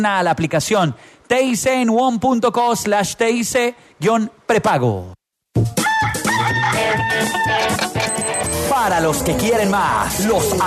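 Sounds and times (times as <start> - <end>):
speech: 0.0 - 5.8, 6.8 - 8.0, 8.7 - 10.6
rooster crowing: 5.8 - 7.9.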